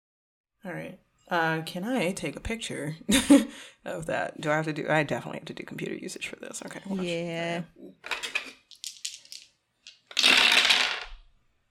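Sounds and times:
speech: 0.6 - 8.4
dice rolling on a hard tabletop: 8.0 - 11.3.

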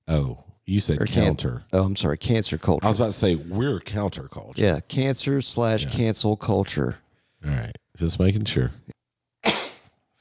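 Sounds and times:
speech: 0.1 - 8.9
sharp cough: 9.4 - 9.9.

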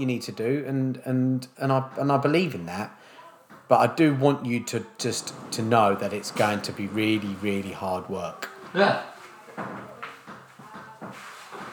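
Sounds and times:
speech: 0.0 - 9.7
door opening with handle and latch clunks and rattles: 5.0 - 11.7.

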